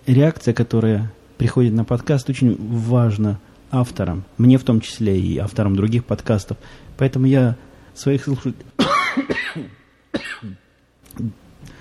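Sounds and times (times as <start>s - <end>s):
speech: 0.1s - 11.8s
person coughing from an allergy: 8.8s - 10.6s
throat-clearing: 8.8s - 11.4s.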